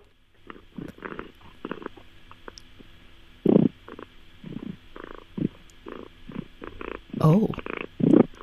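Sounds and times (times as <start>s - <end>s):
cat purring loudly in a deep rough rumble in Huntingdon UK: 0.4s - 2.0s, 3.4s - 8.4s
speech: 7.3s - 7.6s.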